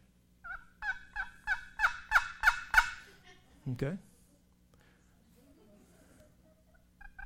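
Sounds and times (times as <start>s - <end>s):
wooden turkey box call scraping raspy yelps: 0.4s - 3.0s, 7.0s - 7.2s
speech: 3.7s - 4.1s.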